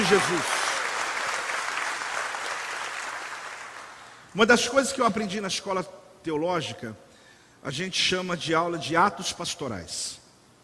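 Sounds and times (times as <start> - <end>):
large group applauding: 0.0 - 4.2
speech: 0.1 - 0.6, 4.4 - 7.0, 7.6 - 10.2.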